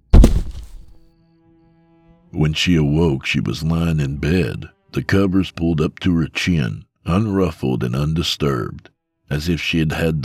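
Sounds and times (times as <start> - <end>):
woman's head thudding onto a carpeted floor as she keels over: 0.0 - 1.0
speech: 2.3 - 10.2.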